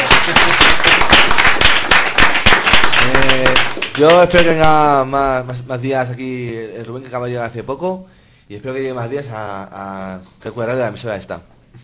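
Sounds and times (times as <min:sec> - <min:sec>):
small group applauding enthusiastically: 0:00.0 - 0:04.8
speech: 0:04.0 - 0:11.5.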